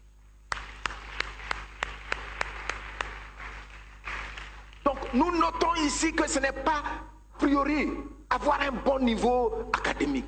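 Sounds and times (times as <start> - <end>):
worship service congregation clapping rhythmically: 0.4 - 5.6
speech: 5.1 - 10.2.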